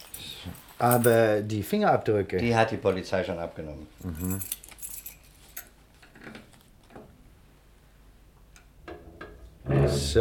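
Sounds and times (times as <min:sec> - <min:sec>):
keys jingling and clinking: 0:00.0 - 0:01.3, 0:04.0 - 0:05.7
speech: 0:00.8 - 0:04.6, 0:09.9 - 0:10.2.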